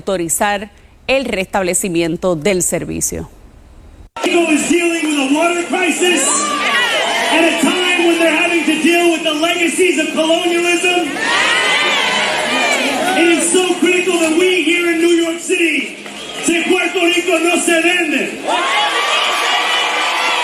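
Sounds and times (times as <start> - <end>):
speech: 0.0 - 3.4, 4.3 - 12.0, 13.2 - 19.0
clapping: 4.2 - 20.4
large crowd cheering and shouting: 4.2 - 20.4.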